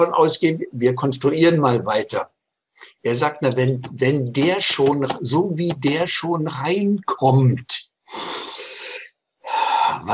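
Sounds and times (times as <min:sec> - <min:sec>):
speech: 0:00.0 - 0:08.3, 0:10.0 - 0:10.1
person imitating heavy breathing with a wheezy intake: 0:08.1 - 0:10.1.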